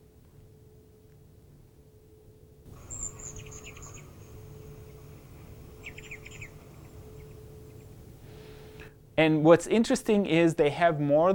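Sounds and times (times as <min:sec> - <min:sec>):
steady low hum: 0:00.0 - 0:11.3
high rapid bird chirping played from an app: 0:02.7 - 0:08.1
speech: 0:09.2 - 0:11.3.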